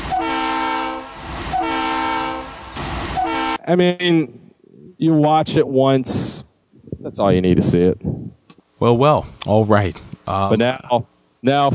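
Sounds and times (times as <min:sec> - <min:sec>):
train horn blasts: 0:00.0 - 0:03.7
speech: 0:03.7 - 0:04.4, 0:05.0 - 0:06.4, 0:07.0 - 0:08.1, 0:08.8 - 0:11.7.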